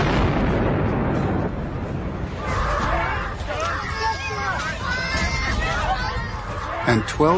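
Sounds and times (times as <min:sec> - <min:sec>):
booming explosion: 0:00.0 - 0:03.4
rumbling noise: 0:00.0 - 0:06.8
crowd shouting and screaming: 0:02.3 - 0:07.3
speech: 0:06.9 - 0:07.3.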